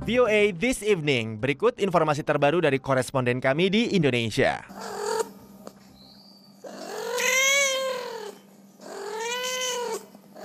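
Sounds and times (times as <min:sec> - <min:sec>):
speech: 0:00.1 - 0:05.0
street cats meowing in Indonesia: 0:06.6 - 0:10.4.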